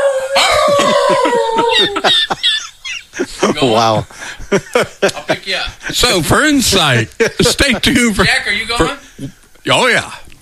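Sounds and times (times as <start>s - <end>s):
dog howling: 0.0s - 2.4s
laughter: 0.4s - 9.3s
speech: 1.1s - 2.7s, 3.6s - 10.2s.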